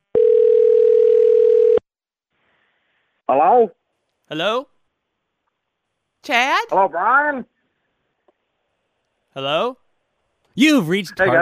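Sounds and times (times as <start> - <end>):
telephone dial tone while a call is being placed: 0.1 - 1.8
speech: 3.6 - 4.7, 6.2 - 7.5, 9.4 - 9.8, 10.6 - 11.4.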